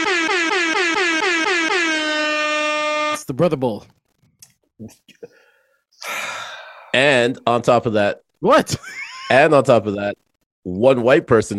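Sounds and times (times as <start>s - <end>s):
air horn blaring: 0.0s - 3.2s
speech: 3.3s - 4.0s, 4.8s - 5.4s, 6.9s - 11.5s.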